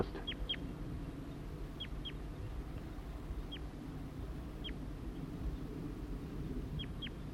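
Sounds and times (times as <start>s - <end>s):
juvenile crossbill begging calls in Table Mountain pines: 0.0s - 0.7s, 1.3s - 2.3s, 3.0s - 3.8s, 4.5s - 4.9s, 6.8s - 7.3s
steady low rumble: 0.0s - 7.3s.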